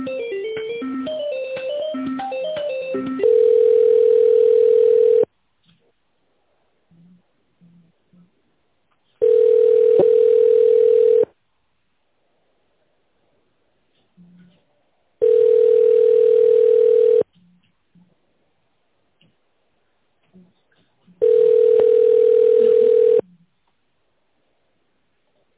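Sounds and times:
steady pure telephone line tone while a call is transferred: 0.0 - 5.3, 9.2 - 11.3, 15.2 - 17.2, 21.2 - 23.2.

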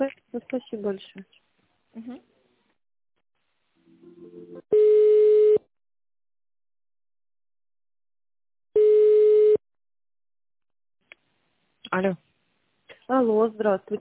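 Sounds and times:
speech: 0.0 - 1.4, 12.0 - 12.2, 13.1 - 13.9
long telephone line beeps while a call is transferred: 4.7 - 5.6, 8.8 - 9.6.

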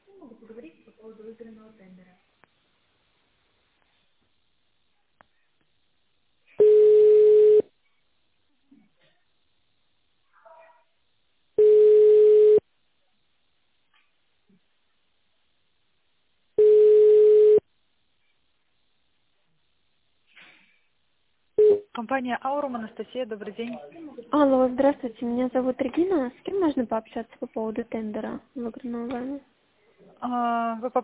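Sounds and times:
telephone line tones while holding for an extension at a medical company: 6.6 - 7.7, 11.6 - 12.6, 16.6 - 17.6
speech: 22.0 - 29.5, 30.2 - 31.0.

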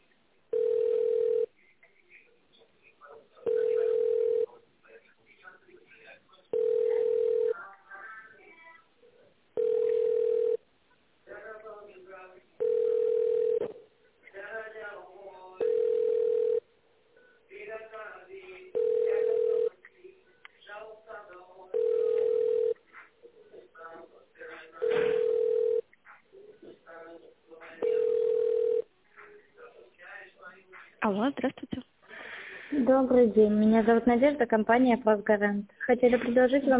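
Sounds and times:
telephone ringing tone while a call is transferred to another department: 0.5 - 1.5, 3.4 - 4.5, 6.5 - 7.5, 9.6 - 10.6, 12.6 - 13.7, 15.6 - 16.6, 18.7 - 19.8, 21.7 - 22.8, 24.8 - 25.9, 27.8 - 28.9
speech: 33.0 - 36.7.

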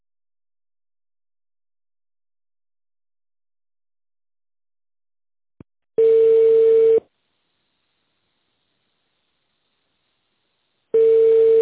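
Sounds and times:
telephone line tone while a call is being transferred: 6.0 - 7.0, 11.0 - 11.5.

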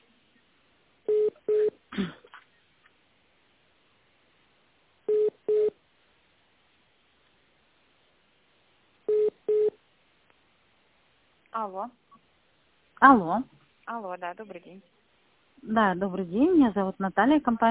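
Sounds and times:
telephone line beeps while a call is being connected: 1.1 - 1.7, 5.1 - 5.7
speech: 11.6 - 12.2, 13.0 - 15.0, 15.6 - 17.6.

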